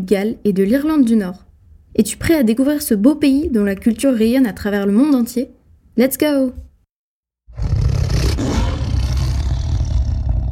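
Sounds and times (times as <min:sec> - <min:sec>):
speech: 0:00.0 - 0:01.4, 0:02.0 - 0:06.7
lion roaring: 0:07.5 - 0:10.5.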